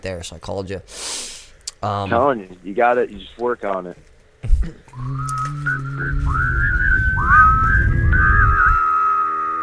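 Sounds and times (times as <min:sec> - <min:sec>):
speech: 0:00.0 - 0:06.7
person humming a low steady hum: 0:04.4 - 0:09.6
wavering slightly breathy whistle: 0:04.9 - 0:09.6.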